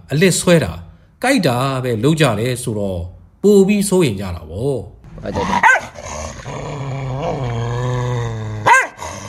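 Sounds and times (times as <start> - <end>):
speech: 0.1 - 5.9
drawn-out tonal growling whine: 5.4 - 9.2
dog barking: 5.6 - 6.0, 8.6 - 9.0.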